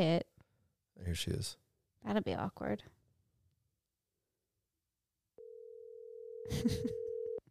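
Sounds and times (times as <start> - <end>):
speech: 0.0 - 0.3, 1.0 - 3.0, 6.4 - 7.0
steady electronic phone ringback tone: 5.4 - 7.4.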